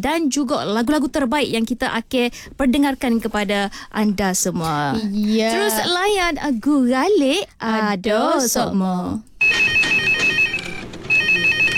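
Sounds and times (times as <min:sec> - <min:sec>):
speech: 0:00.0 - 0:09.8
telephone ringing with a bright electronic trill: 0:09.4 - 0:11.7.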